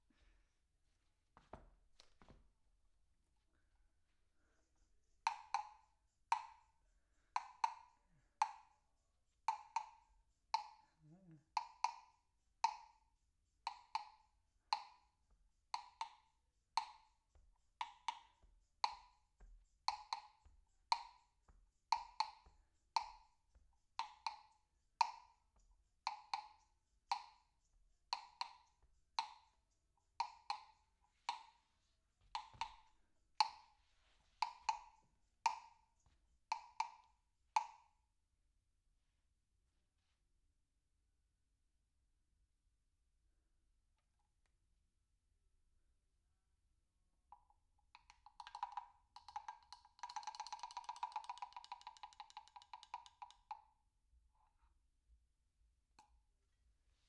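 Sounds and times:
percussion: 3.6s - 38.0s, 47.3s - 53.9s.

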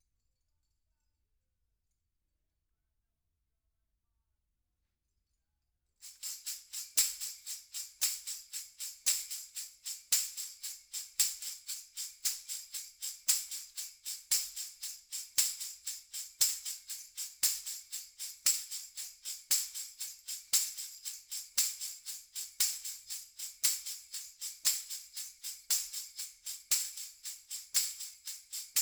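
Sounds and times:
percussion from overhead microphones: 6.0s - 28.8s.

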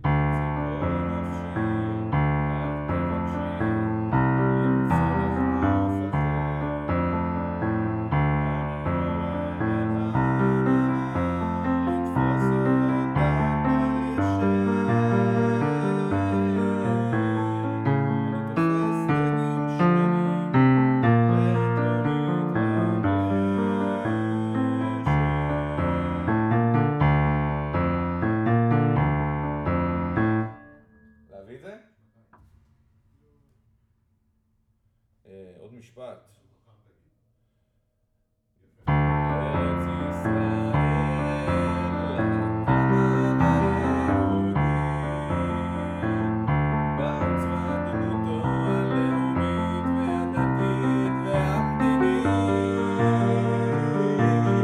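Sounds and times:
piano: 0.0s - 31.5s, 38.8s - 54.6s.

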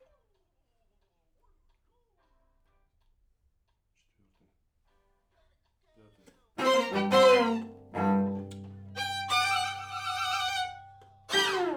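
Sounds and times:
main strings: 6.6s - 11.7s.

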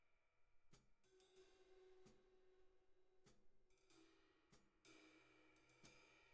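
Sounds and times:
snare drum recorded from the bottom at 94 bpm: 0.7s - 2.5s, 3.2s - 6.3s.

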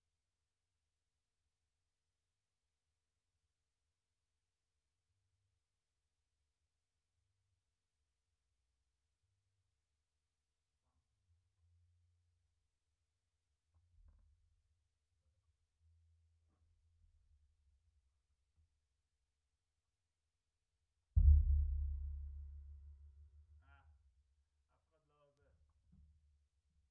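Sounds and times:
sub bass: 21.2s - 23.1s.

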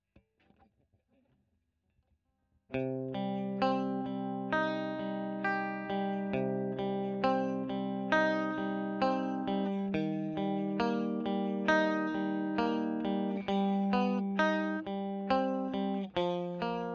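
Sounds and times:
electric guitar: 2.7s - 16.9s.

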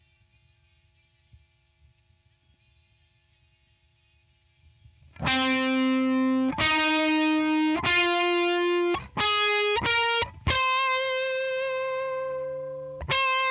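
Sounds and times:
guitar: 5.0s - 13.4s.

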